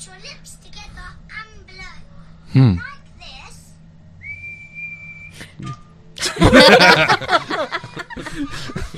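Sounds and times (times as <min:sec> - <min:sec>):
speech: 0:00.0 - 0:02.9
person whistling with pursed lips: 0:04.2 - 0:05.6
people chuckling: 0:05.6 - 0:08.9.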